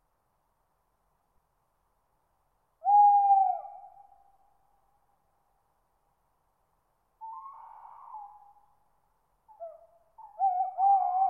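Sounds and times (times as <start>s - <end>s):
tawny owl hooting: 2.8s - 4.2s, 7.2s - 8.6s, 9.5s - 11.2s.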